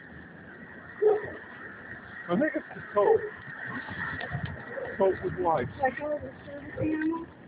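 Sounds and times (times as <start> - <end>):
dog barking: 1.0 - 1.4
speech: 2.3 - 3.3, 5.1 - 7.3.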